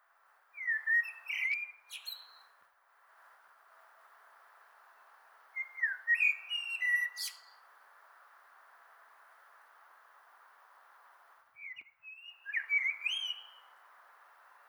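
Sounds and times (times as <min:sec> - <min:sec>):
common blackbird Turdus merula singing slurred whistles: 0:00.6 - 0:02.5, 0:05.6 - 0:07.5, 0:11.6 - 0:13.7.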